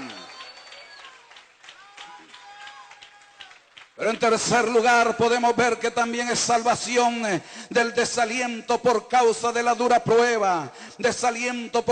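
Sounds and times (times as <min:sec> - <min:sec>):
voices calling out and cheering: 0:00.0 - 0:04.3
audience applauding: 0:00.0 - 0:04.7
speech: 0:04.0 - 0:11.9.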